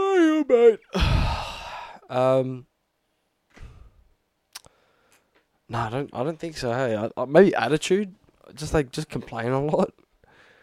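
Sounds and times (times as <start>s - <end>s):
person yawning with a drawn-out voiced groan: 0.0s - 2.1s
speech: 0.5s - 1.2s, 2.1s - 2.7s, 5.7s - 10.0s.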